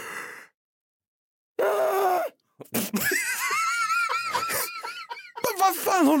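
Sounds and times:
person imitating a woman's loud screaming yawn: 1.6 - 2.3
speech: 2.6 - 3.2, 5.9 - 6.1
person laughing: 2.6 - 6.1.

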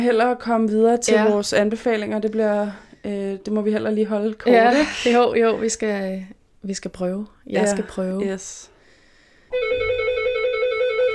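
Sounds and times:
speech: 0.0 - 8.7, 9.5 - 10.1
electronic doorbell ringing: 9.5 - 11.1.

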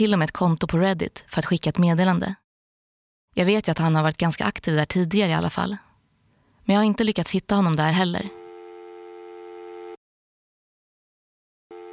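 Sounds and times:
speech: 0.0 - 2.4, 3.4 - 5.9, 6.7 - 8.4
steady electronic telephone ringback tone: 8.2 - 10.0, 11.7 - 11.9.

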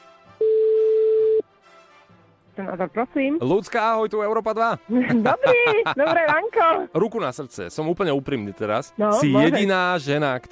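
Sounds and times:
steady mid-pitched telephone tone while a call is placed: 0.4 - 1.4
speech: 2.6 - 10.5
laughter: 4.9 - 6.9.

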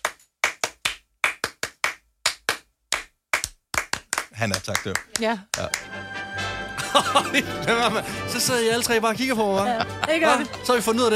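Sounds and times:
rhythmic hand claps: 0.0 - 6.0
speech: 4.3 - 6.2, 6.9 - 11.1
laughter: 6.7 - 8.8, 9.4 - 11.0.

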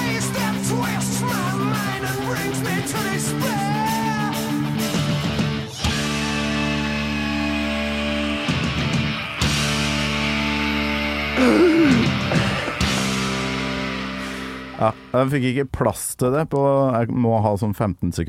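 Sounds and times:
heavy metal singer holding a long high screamed note: 0.0 - 4.6, 5.8 - 9.2
dense driving heavy metal guitars and drums: 0.0 - 15.2
speech: 14.8 - 18.2.

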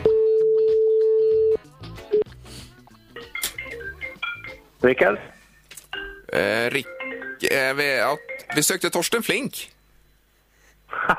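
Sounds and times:
telephone line dial tone: 0.0 - 1.6
speech: 4.8 - 5.4, 6.4 - 9.8, 11.0 - 11.1.

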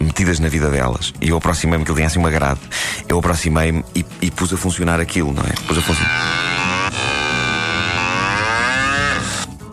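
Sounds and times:
speech: 0.2 - 6.6
cow mooing: 5.8 - 9.5.

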